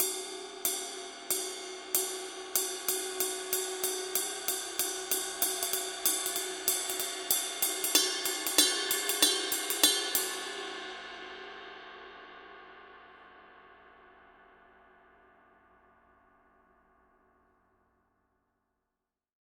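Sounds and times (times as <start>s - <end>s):
Dark Energy ride cymbal pattern: 0.0s - 11.0s.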